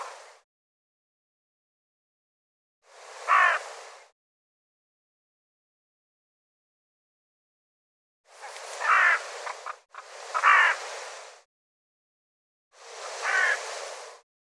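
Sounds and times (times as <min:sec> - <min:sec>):
bird giving rough raspy single calls: 0:03.3 - 0:03.7, 0:08.4 - 0:10.8, 0:13.1 - 0:13.7.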